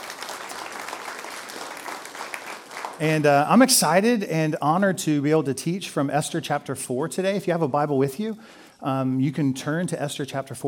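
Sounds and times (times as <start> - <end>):
church congregation applauding: 0.0 - 3.4
speech: 3.0 - 10.6.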